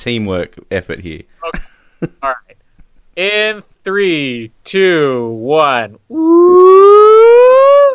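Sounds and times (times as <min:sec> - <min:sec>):
speech: 0:00.0 - 0:02.6, 0:03.2 - 0:07.5
slide whistle gliding upward: 0:06.1 - 0:07.9.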